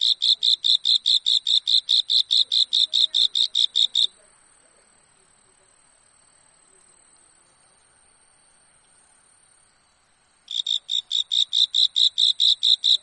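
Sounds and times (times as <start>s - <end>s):
cricket chirping beneath a wall: 0.0s - 13.0s
faint high whine: 3.2s - 11.1s.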